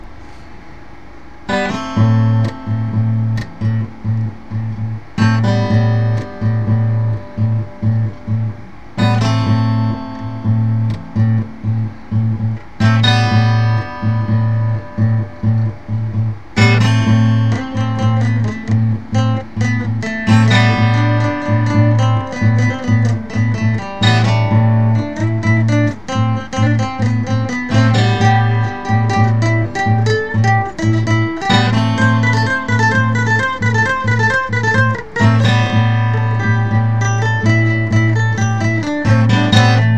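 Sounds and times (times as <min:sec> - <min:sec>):
somber guitar song with echo: 0:01.5 - 0:39.9.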